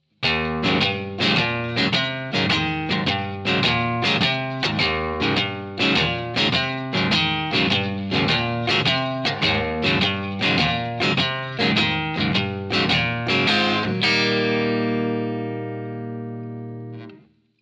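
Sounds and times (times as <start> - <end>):
Texas blues shuffle variation on guitar: 0.2 - 17.2.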